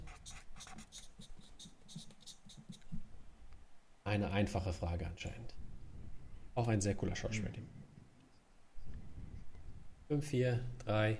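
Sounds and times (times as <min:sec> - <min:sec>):
pen scratching on paper as quiz players write an answer: 0:00.0 - 0:03.0
speech: 0:04.1 - 0:05.6, 0:06.6 - 0:07.8, 0:10.1 - 0:11.1.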